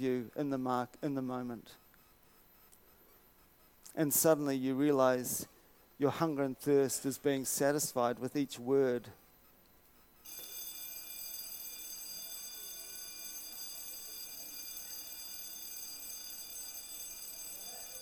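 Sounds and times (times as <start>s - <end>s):
speech: 0.0s - 1.8s, 4.0s - 9.2s
dinner bell ringing: 10.3s - 18.0s.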